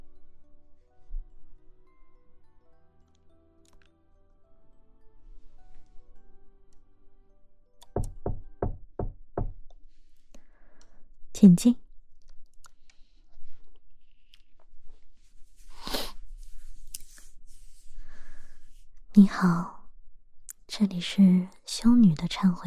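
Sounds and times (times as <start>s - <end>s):
soft music: 0.0s - 22.6s
knocking on a door: 7.9s - 9.6s
speech: 11.4s - 11.8s, 21.0s - 22.6s.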